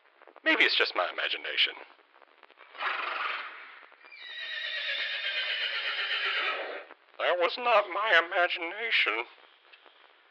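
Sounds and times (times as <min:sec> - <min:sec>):
speech: 0:00.5 - 0:02.0, 0:07.2 - 0:09.4
horse neighing: 0:02.8 - 0:06.9.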